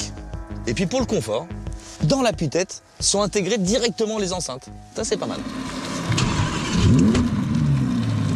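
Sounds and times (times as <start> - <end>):
speech: 0.7 - 6.3
naturally aspirated V10 supercar engine starting and revving: 5.2 - 8.3.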